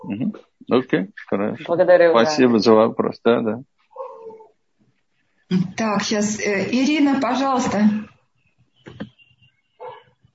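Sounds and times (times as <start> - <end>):
speech: 0.0 - 3.7, 5.5 - 8.1
faint low noise: 0.0 - 10.3
dog barking: 4.0 - 4.5, 9.8 - 10.2.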